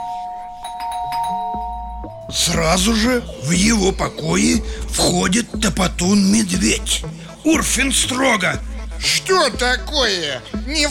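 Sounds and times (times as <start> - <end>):
palace doorbell chime: 0.0 - 2.4
speech: 2.3 - 10.8.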